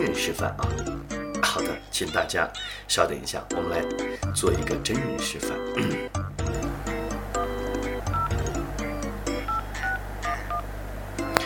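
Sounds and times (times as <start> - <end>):
speech: 0.0 - 6.6
telephone keypad dialing tones: 7.0 - 11.4.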